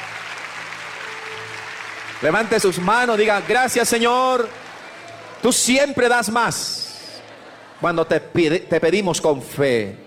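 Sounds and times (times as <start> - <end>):
crowd applauding in a large space: 0.0 - 7.4
speech: 2.2 - 4.6, 5.4 - 6.8, 7.8 - 10.0.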